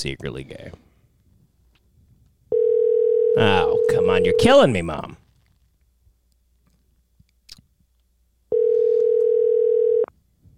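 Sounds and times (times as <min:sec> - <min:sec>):
speech: 0:00.0 - 0:00.8, 0:03.4 - 0:05.2
telephone dial tone after call hang-up: 0:02.5 - 0:03.9, 0:08.5 - 0:10.1.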